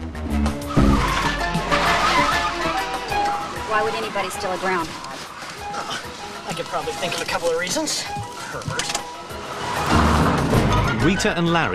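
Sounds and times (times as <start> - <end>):
police car and stolen car engines revving in a car chase: 0.4 - 5.5, 8.4 - 11.7
tires skidding and squealing: 0.5 - 5.6, 9.2 - 11.7
speech: 3.7 - 5.1, 5.8 - 9.1, 11.0 - 11.7.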